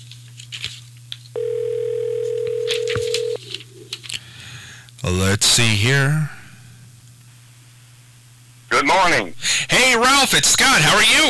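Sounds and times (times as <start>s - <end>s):
faint clicks and rustles: 0.0s - 1.4s, 2.2s - 5.0s
outgoing call telephone ringback tone: 1.4s - 3.9s
speech: 5.1s - 6.4s, 8.8s - 11.2s.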